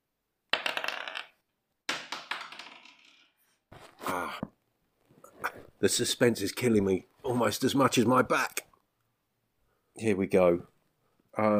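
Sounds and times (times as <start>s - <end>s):
dice clattering across a hard tabletop: 0.5s - 3.5s
speech: 5.8s - 8.6s, 10.0s - 10.7s, 11.4s - 11.5s.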